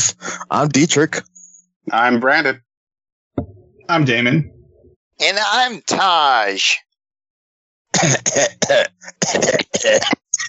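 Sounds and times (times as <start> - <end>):
speech: 0.1 - 2.7, 3.4 - 4.6, 5.2 - 6.9, 8.0 - 10.2
smoker coughing harshly: 8.0 - 10.4
smoker's gravelly throat clearing: 8.0 - 10.4.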